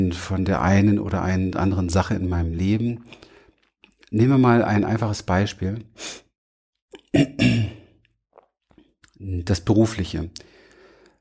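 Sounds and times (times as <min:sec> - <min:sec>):
speech: 0:00.0 - 0:03.3, 0:04.1 - 0:06.2, 0:07.1 - 0:07.8, 0:09.2 - 0:10.5
person with a cold breathing heavily: 0:10.4 - 0:11.1.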